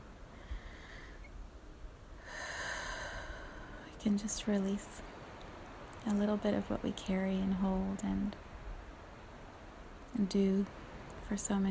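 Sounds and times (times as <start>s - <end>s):
slow exhale: 0.3s - 1.3s, 2.2s - 3.9s
speech: 4.0s - 5.1s, 6.0s - 8.4s, 10.2s - 11.7s.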